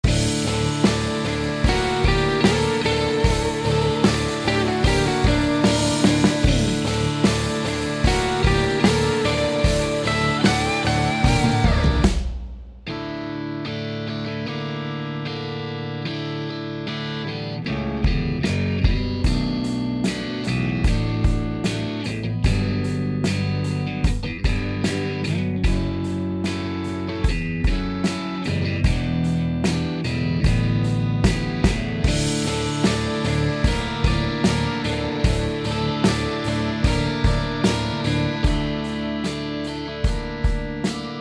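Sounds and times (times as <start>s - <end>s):
guitar: 0.0s - 41.1s.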